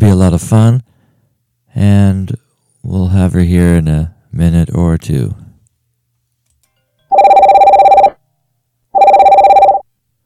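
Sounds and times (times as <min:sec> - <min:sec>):
speech: 0:00.0 - 0:00.9, 0:01.8 - 0:05.4
telephone bell ringing: 0:07.1 - 0:08.2, 0:09.0 - 0:09.8.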